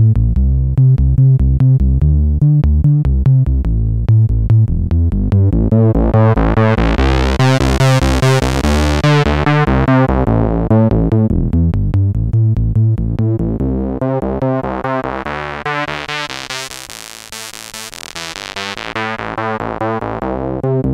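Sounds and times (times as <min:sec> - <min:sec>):
Korg 700S Traveler synthesizer: 0:00.2 - 0:20.9.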